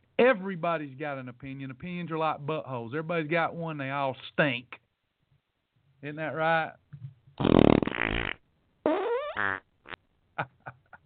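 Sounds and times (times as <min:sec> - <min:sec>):
speech: 0:00.2 - 0:04.8, 0:06.0 - 0:07.1
fart sound effect: 0:07.4 - 0:10.0.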